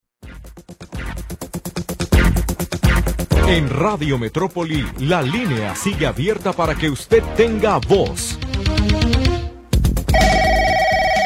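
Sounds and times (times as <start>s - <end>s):
busy music: 0.2s - 11.2s
speech: 3.5s - 9.2s
telephone ringing with a steady electronic tone: 10.1s - 11.2s.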